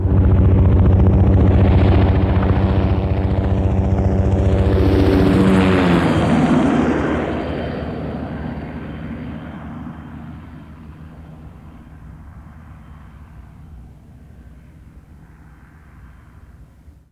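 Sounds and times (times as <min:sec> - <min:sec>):
military helicopter passing by fast: 0:00.0 - 0:17.1.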